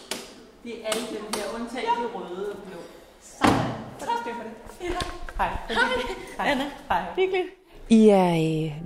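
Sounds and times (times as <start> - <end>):
speech: 0.7 - 2.9, 4.3 - 8.8
heavy church door opening and shutting: 3.3 - 3.9.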